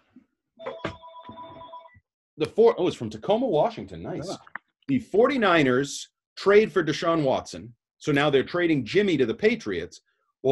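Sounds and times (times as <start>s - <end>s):
telephone ringing with electronic tone: 0.6s - 2.0s
speech: 2.4s - 10.5s.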